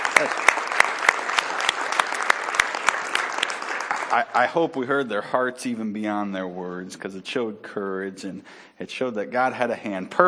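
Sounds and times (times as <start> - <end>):
church congregation applauding after worship: 0.0 - 4.8
speech: 0.2 - 0.5, 4.1 - 10.2.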